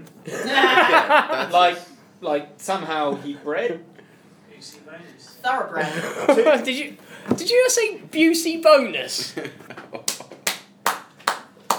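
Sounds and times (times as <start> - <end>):
speech: 0.2 - 4.0, 4.6 - 10.1
laughter: 0.3 - 1.8, 5.8 - 6.8, 9.2 - 10.4
sharp hand claps: 10.0 - 11.7.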